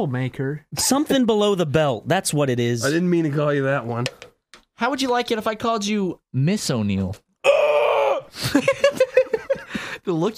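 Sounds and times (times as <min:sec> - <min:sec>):
speech: 0:00.0 - 0:07.6, 0:08.3 - 0:09.0, 0:10.0 - 0:10.3
person screaming: 0:07.4 - 0:08.4
laughter: 0:08.4 - 0:09.9.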